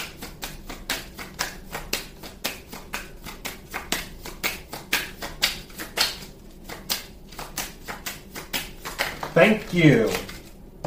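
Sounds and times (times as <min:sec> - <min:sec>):
cards dealt one by one from a split deck: 0:00.2 - 0:10.8
speech: 0:09.4 - 0:10.2.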